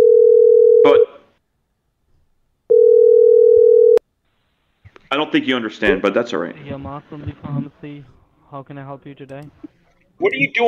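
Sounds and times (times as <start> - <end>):
telephone dial tone after caller hangs up: 0.0 - 1.0, 2.7 - 4.0
speech: 0.8 - 1.1, 5.3 - 10.6.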